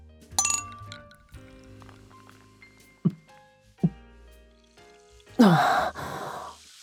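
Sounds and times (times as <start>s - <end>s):
champagne glasses clinking in a toast: 0.4s - 2.2s
satisfied breathy sigh after a sip of champagne: 5.4s - 6.6s.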